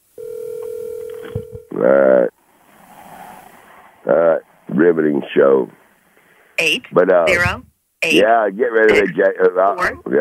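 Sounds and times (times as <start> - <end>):
telephone dial tone: 0.2 - 1.7
speech: 1.8 - 2.2, 4.9 - 5.8, 6.6 - 10.1.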